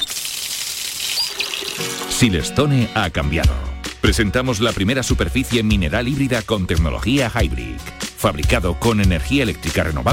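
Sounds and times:
water pouring from a tap: 0.0 - 2.3
speech: 2.2 - 10.1.

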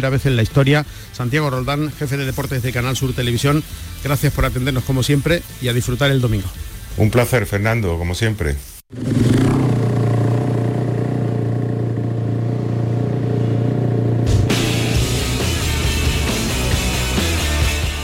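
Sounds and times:
speech: 0.0 - 9.4
motorcycle engines roaring and revving: 8.9 - 17.0.

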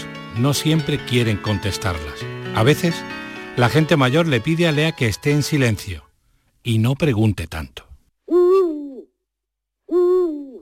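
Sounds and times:
speech: 0.4 - 8.4
owl hooting: 8.3 - 9.1, 9.9 - 10.6.

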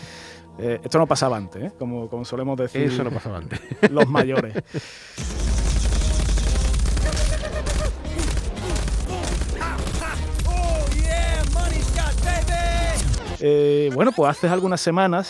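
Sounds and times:
speech: 0.6 - 5.4, 13.4 - 15.2
laughter: 2.8 - 4.9, 7.0 - 8.3
first-person shooter video game gunfire: 5.2 - 13.2
video game explosions: 5.2 - 13.2
pounding video game soundtrack: 5.2 - 14.8
shouted voices: 9.1 - 13.2.

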